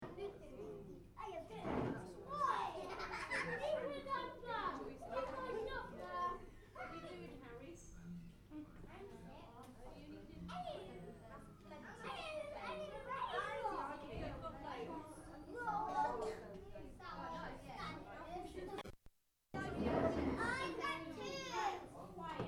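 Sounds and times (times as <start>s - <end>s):
small children's party lunch ambience in a cafeteria: 0.0s - 22.4s.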